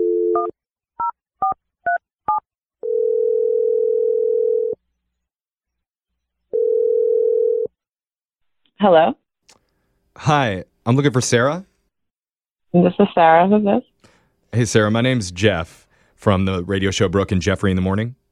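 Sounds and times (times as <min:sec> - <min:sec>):
telephone dial tone: 0:00.0 - 0:00.6, 0:02.8 - 0:04.8, 0:06.5 - 0:07.8
telephone ringing tones: 0:02.8 - 0:04.8, 0:06.5 - 0:07.7
speech: 0:08.8 - 0:09.2, 0:10.2 - 0:11.7, 0:12.7 - 0:13.9, 0:14.5 - 0:18.2.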